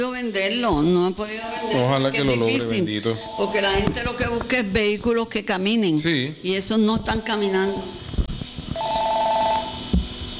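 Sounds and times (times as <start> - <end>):
speech: 0.0 - 8.0
telephone ringing with an incoming call: 1.4 - 4.0, 8.8 - 9.7.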